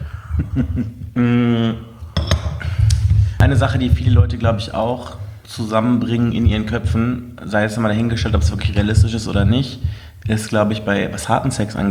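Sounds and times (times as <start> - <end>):
speech: 0.6 - 1.9, 3.5 - 11.8
coffee cups clinking together in a toast: 2.1 - 3.0.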